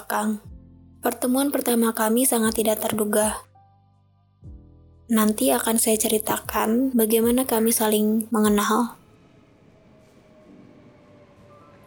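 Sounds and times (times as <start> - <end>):
speech: 0.1 - 3.5, 5.1 - 9.0
faint tonal hums: 7.8 - 11.8
light rail train rumbling at a station: 9.0 - 11.8.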